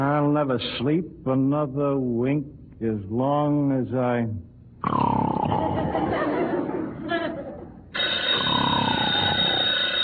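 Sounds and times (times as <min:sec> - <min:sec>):
speech: 0:00.0 - 0:05.3
laughter: 0:05.5 - 0:07.8
telephone bell ringing with a bright metallic jangle: 0:07.9 - 0:10.0.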